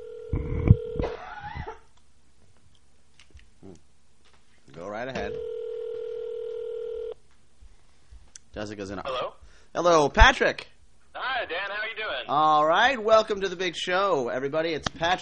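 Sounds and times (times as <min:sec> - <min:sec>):
telephone dialing and ringing tone: 0:00.0 - 0:01.0, 0:05.3 - 0:07.2
speech: 0:08.6 - 0:10.7, 0:11.4 - 0:15.1.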